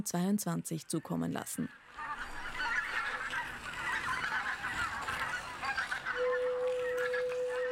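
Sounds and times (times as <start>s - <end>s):
speech: 0.0s - 2.1s
chorus of honking geese: 1.0s - 7.6s
sustained ceramic flute tone: 6.2s - 7.6s.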